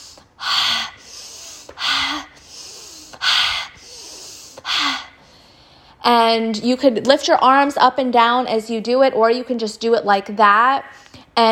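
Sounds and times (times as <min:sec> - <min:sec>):
forceful nasal breathing during a breathing exercise: 0:00.0 - 0:05.8
speech: 0:06.0 - 0:11.4.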